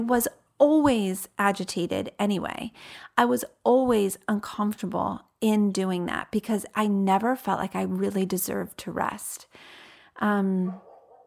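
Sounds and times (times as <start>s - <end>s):
speech: 0.0s - 10.9s
neighbor's dog barking: 10.7s - 11.2s.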